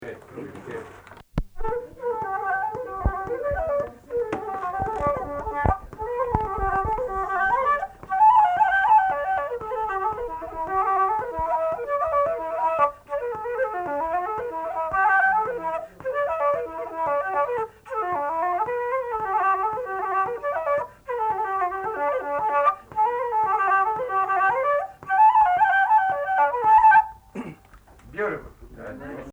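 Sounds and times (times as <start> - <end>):
flute melody: 1.5 - 29.3.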